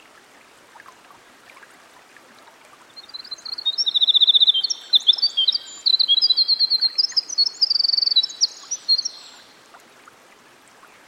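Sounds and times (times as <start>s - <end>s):
gentle continuous hiss: 0.0s - 11.0s
winter wren singing by a stream: 3.0s - 9.5s.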